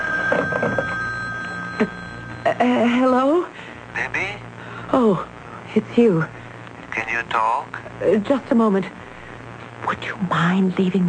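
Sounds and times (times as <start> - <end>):
telephone ringing with a trilling bell: 0.0 - 3.1
steady high hum: 0.0 - 11.0
speech: 0.3 - 0.8, 1.8 - 2.0, 2.6 - 6.4, 7.0 - 9.0, 9.9 - 11.0.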